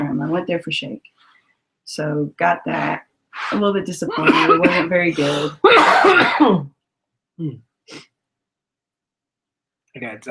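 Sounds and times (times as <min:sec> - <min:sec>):
speech: 0:00.2 - 0:01.3, 0:01.9 - 0:06.8, 0:07.4 - 0:08.1, 0:10.0 - 0:10.3
raspy coughing after smoking: 0:04.1 - 0:06.7.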